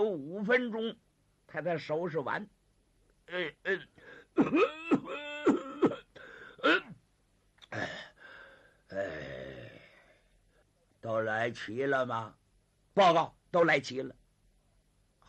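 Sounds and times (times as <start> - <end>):
speech: 0.0 - 2.6, 3.3 - 6.0, 6.6 - 6.9, 11.0 - 12.4, 13.0 - 14.2
man imitating an old man coughing and wheezing: 3.3 - 7.0, 7.6 - 8.2, 8.9 - 9.8.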